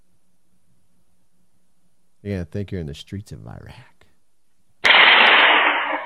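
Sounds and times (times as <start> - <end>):
speech: 2.2 - 4.0
loud gunshot in a played-back video recording: 4.8 - 6.0.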